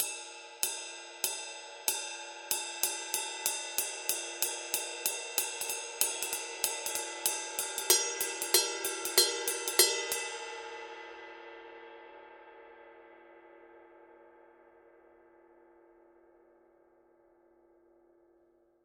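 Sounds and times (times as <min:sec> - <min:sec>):
22-inch ride cymbal playing a pattern: 0:00.0 - 0:11.0.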